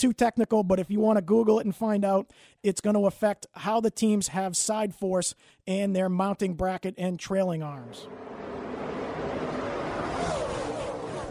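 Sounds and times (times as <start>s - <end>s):
speech: 0.0s - 8.5s
car engine droning while shifting into third gear: 7.8s - 11.2s.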